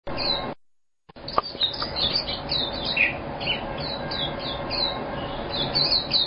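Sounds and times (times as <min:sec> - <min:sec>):
background hiss and hum: 0:00.1 - 0:06.2
white-eye giving thin high chirping notes: 0:01.2 - 0:06.2.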